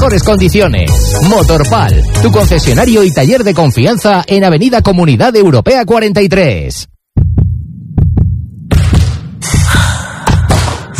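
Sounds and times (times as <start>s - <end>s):
speech: 0.1s - 6.9s
deep steady heartbeat thumping: 7.2s - 10.9s.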